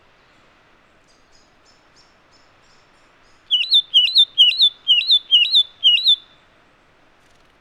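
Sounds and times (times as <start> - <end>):
satin flycatcher Myiagra cyanoleuca whistling: 3.5 - 6.2.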